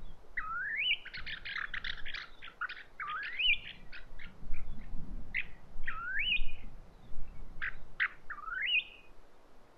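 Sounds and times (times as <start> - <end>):
bird chirps and whistles: 0.4 - 3.7, 5.9 - 6.7, 7.6 - 9.1.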